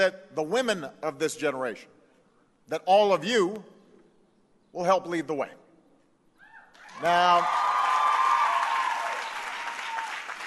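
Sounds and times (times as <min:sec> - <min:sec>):
speech: 0:00.0 - 0:02.0, 0:02.7 - 0:03.8, 0:04.7 - 0:05.6, 0:07.0 - 0:07.7
crowd applauding at a commencement ceremony: 0:06.8 - 0:10.4.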